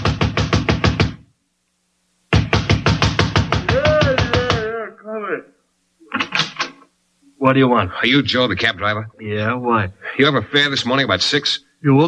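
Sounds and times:
fist pounding on wooden door of a night-shift cab driver's home: 0.0 - 1.2, 2.3 - 4.7
man calling out: 3.6 - 5.6
speech: 7.4 - 12.0.

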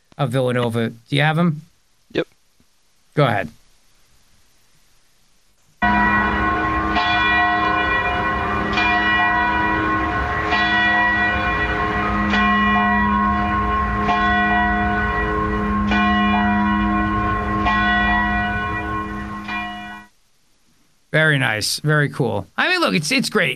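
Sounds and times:
speech: 0.2 - 2.3, 3.2 - 3.6, 21.4 - 23.5
church bells pealing in celebration of a papal election: 5.8 - 20.1.

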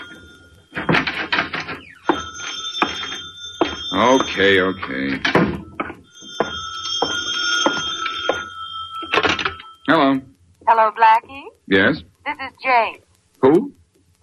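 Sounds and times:
telephone bell ringing: 0.0 - 9.9
speech: 4.1 - 5.5, 10.8 - 13.6.

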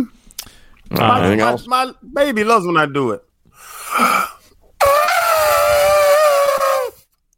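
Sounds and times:
speech: 0.9 - 4.2
person imitating an elephant trumpeting: 4.8 - 7.0.

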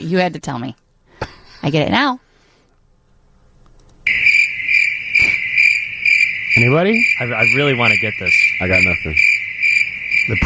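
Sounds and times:
speech: 0.1 - 0.8, 1.6 - 2.2, 6.6 - 9.3, 10.3 - 10.4
crickets chirping sound effect: 4.0 - 10.4.

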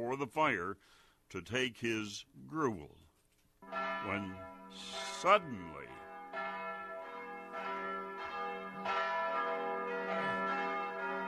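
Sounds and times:
speech: 0.0 - 3.0, 3.6 - 6.1
many house bells ringing together in a dense jangle: 3.6 - 11.2.

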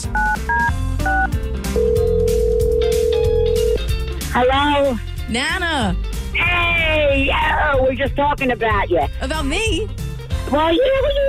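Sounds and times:
touch-tone telephone dialing beeps: 0.2 - 3.8
long steady telephone tone: 1.8 - 3.8
speech: 4.4 - 11.2.

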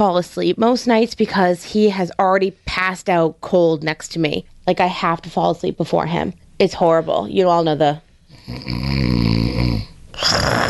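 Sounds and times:
speech: 0.0 - 10.6
man snoring: 8.3 - 10.6.

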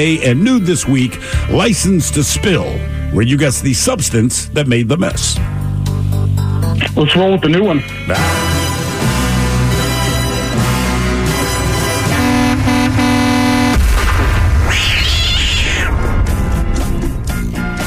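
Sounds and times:
speech: 0.0 - 5.6, 6.8 - 8.5
loud steady musical passage: 0.0 - 13.8, 15.9 - 17.8
cat yowling: 14.6 - 16.0.

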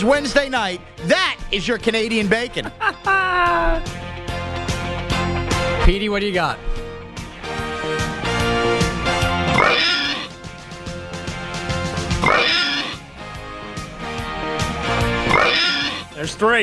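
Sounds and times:
speech: 0.0 - 4.0, 5.9 - 6.8, 16.2 - 16.6
loud steady music: 0.0 - 16.6
laughter: 2.2 - 3.9
toy sound-effect machine squealing pig oinks: 9.6 - 10.3, 12.2 - 13.0, 15.3 - 16.0.

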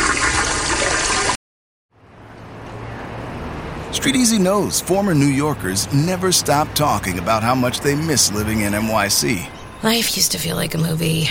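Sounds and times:
toilet flushing: 0.0 - 1.4
speech: 3.9 - 11.2.

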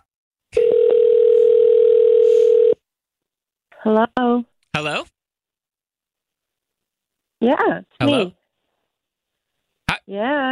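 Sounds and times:
steady continuous phone line tone: 0.5 - 2.8
speech: 7.4 - 8.4, 10.1 - 10.5.

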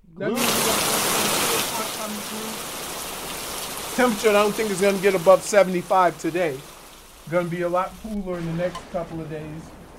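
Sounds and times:
speech: 0.2 - 0.7, 4.0 - 6.7, 7.3 - 9.8
steady dense rain: 0.2 - 9.9.

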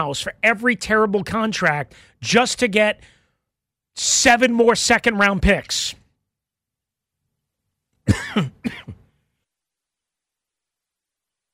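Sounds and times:
speech: 0.0 - 3.2, 4.0 - 6.0, 8.1 - 8.8
person with allergies coughing harshly: 8.0 - 9.1.

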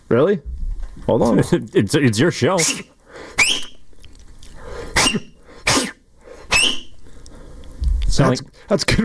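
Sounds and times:
speech: 0.1 - 3.5, 8.2 - 9.0
breathy failed finger whistle attempts to hail a cab: 2.6 - 3.9, 5.0 - 7.0.

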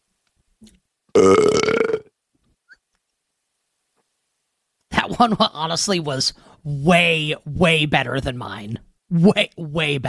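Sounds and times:
speech: 0.6 - 1.5, 5.2 - 10.0
person burping on command into a microphone: 1.1 - 2.1.

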